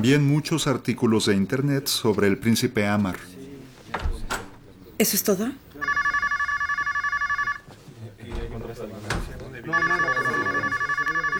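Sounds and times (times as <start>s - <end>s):
speech: 0.0s - 3.4s, 5.0s - 5.6s
electronic telephone ringing in trilling bursts: 5.8s - 7.7s, 9.6s - 11.3s.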